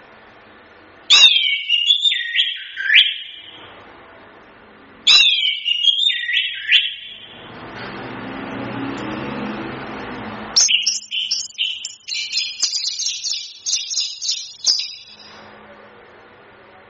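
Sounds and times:
chestnut-capped thrush whistled song: 1.1 - 3.6, 5.1 - 7.3, 10.6 - 15.4
chestnut-capped thrush high chattering notes: 10.6 - 15.4.

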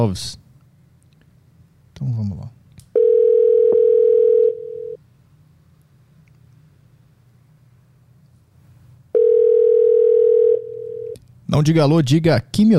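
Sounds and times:
speech: 0.0 - 0.4, 2.0 - 2.6, 11.5 - 12.7
low hum: 0.0 - 12.7
telephone dial tone while placing a call: 3.0 - 5.0, 9.2 - 11.2.

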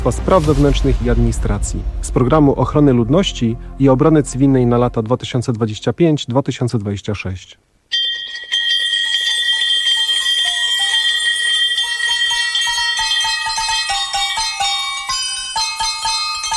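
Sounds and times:
speech: 0.0 - 7.7
cheerful carol played on victory bells rung in cancer clinics: 7.9 - 16.5.

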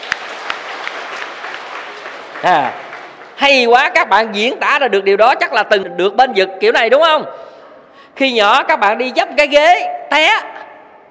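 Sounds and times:
audience clapping at a Buddhist monk's talk: 0.0 - 3.8
speech: 2.4 - 2.8, 3.4 - 7.4, 8.2 - 10.5.

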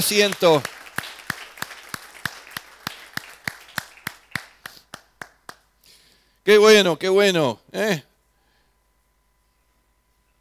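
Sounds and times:
speech: 0.0 - 0.8, 6.4 - 8.1
church congregation clapping in unison during a service: 0.0 - 5.7.

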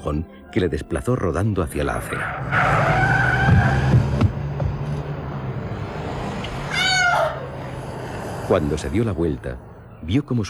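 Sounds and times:
speech: 0.0 - 3.1, 8.5 - 10.4
car braking hard with skidding tires: 1.8 - 9.8.

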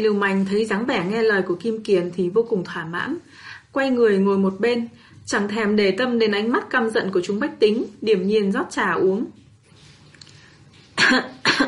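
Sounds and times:
speech: 0.0 - 9.4, 11.0 - 11.6
person clearing throat: 11.0 - 11.6.

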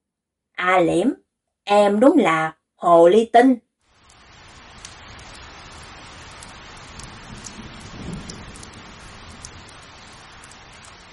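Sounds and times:
speech: 0.6 - 3.6
rain falling after dark: 3.9 - 11.1
low rumble: 4.1 - 11.1.

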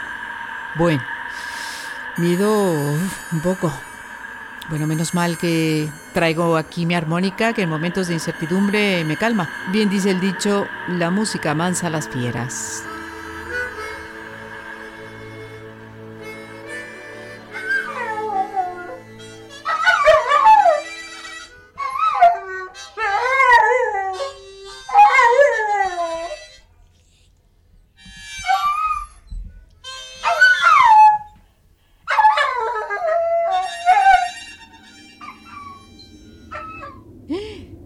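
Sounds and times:
speech: 0.7 - 1.5, 2.2 - 3.9, 4.7 - 12.9
dog howling and yipping: 17.4 - 26.6, 28.4 - 29.3, 30.2 - 31.4, 32.1 - 37.2.

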